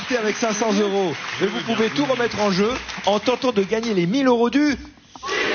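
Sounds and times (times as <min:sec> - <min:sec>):
TV game show studio audience cheering and shouting: 0:00.0 - 0:02.8
speech: 0:00.1 - 0:05.4.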